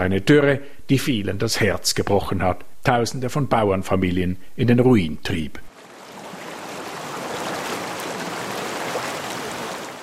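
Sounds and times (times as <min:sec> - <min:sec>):
speech: 0:00.0 - 0:05.7
rushing water flooding onto a cotton farm: 0:05.7 - 0:10.0.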